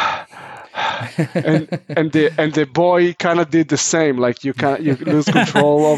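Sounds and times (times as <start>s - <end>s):
person imitating heavy gasping for breath: 0.0s - 1.5s
laughter: 0.4s - 2.8s, 4.5s - 5.9s
speech: 1.0s - 5.9s.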